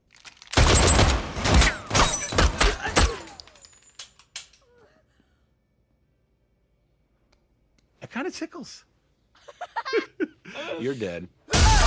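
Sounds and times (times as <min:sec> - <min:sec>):
gunshots fired at a person wearing a bulletproof suit: 0:00.5 - 0:03.3, 0:11.5 - 0:11.8
speech: 0:08.1 - 0:08.9, 0:10.6 - 0:11.4
laughter: 0:09.4 - 0:11.8.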